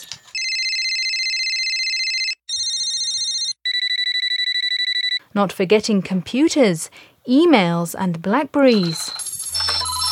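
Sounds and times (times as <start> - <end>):
collage of electronic telephone ringtones composed for a display: 0.3 - 5.2, 8.7 - 10.1
speech: 5.4 - 9.2.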